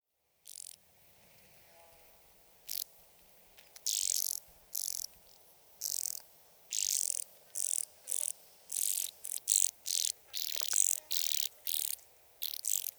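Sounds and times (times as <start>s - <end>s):
band-winged grasshopper stridulating at Sissonne: 0.4s - 0.8s, 2.7s - 2.9s, 3.7s - 5.1s, 5.8s - 12.9s.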